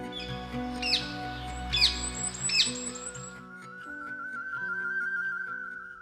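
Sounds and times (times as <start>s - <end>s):
recorded bird song chirping: 0.1s - 3.4s
sustained higher whistle-like tone: 2.5s - 6.0s.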